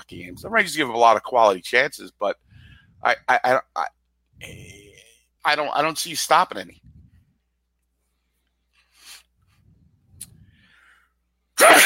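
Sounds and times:
speech: 0.0 - 4.8, 5.4 - 6.9
quiet breathing: 2.4 - 3.1, 6.7 - 11.4
sneeze: 11.6 - 11.8.

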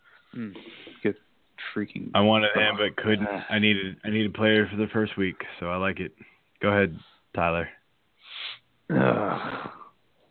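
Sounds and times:
speech: 0.4 - 9.7
groan of disappointment at a fantasy football playoff draft: 8.9 - 9.9.

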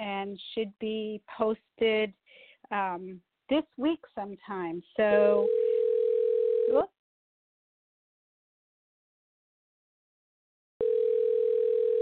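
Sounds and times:
speech: 0.3 - 5.6, 6.7 - 7.0
telephone ring tone on a call line: 5.3 - 6.8, 10.8 - 12.0.

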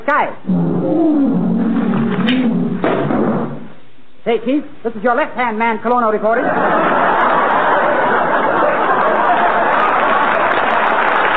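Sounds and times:
speech: 0.0 - 1.5, 4.3 - 6.9
lion roaring: 0.4 - 2.9
laughter: 6.4 - 11.0.

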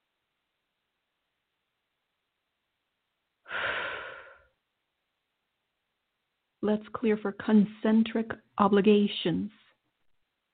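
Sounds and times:
single long deep breath: 3.5 - 4.6
speech: 6.6 - 9.6.

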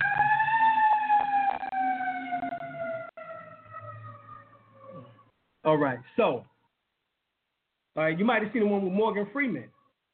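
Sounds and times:
fire engine siren passing by: 0.0 - 6.2
speech: 5.6 - 6.5, 8.0 - 9.8.

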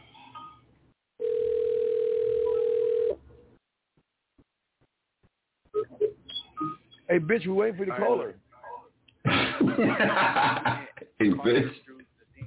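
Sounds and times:
long steady telephone ringing tone: 1.2 - 3.2
speech: 7.2 - 8.4, 9.8 - 10.9, 11.4 - 11.8
laughter: 9.3 - 11.2.

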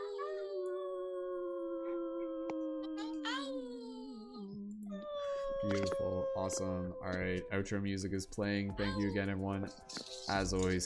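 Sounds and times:
human voices imitating wolf howls: 0.0 - 8.0
speech: 5.6 - 10.8.

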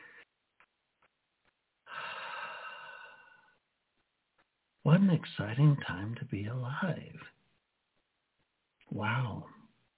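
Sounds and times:
deep breath in and out: 1.8 - 3.6
speech: 4.8 - 7.4, 8.9 - 9.6.

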